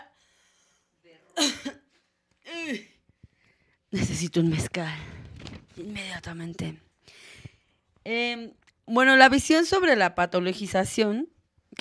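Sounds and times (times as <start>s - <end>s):
faint breath: 0.1s - 1.0s, 7.0s - 7.8s
person coughing after drinking a glass of water: 1.4s - 1.9s
speech: 2.7s - 2.9s, 4.2s - 5.2s, 5.8s - 7.2s, 8.0s - 11.8s.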